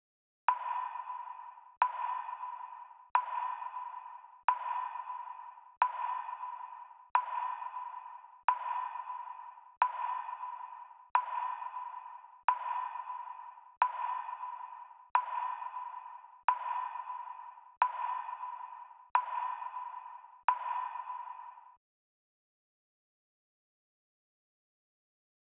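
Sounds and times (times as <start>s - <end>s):
percussion loop in F sharp minor: 0.5s - 21.8s.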